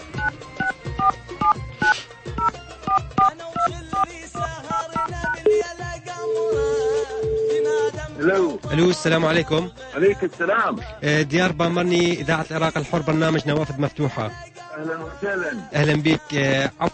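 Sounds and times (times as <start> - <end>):
touch-tone beeps of a telephone number dialed on a keypad: 0.2 - 7.7
speech: 8.7 - 16.9.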